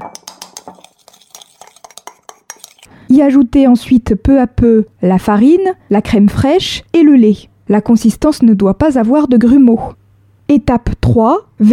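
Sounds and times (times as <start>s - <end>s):
hand whisk stirring eggs and sugar in a bowl: 0.0s - 2.9s
speech: 3.1s - 11.7s.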